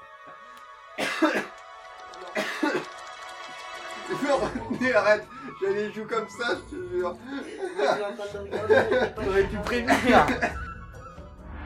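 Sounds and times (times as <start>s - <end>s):
person coughing harshly: 1.0s - 1.5s, 2.4s - 2.9s
speech: 1.2s - 1.5s, 4.3s - 10.6s
laughter: 2.2s - 11.2s.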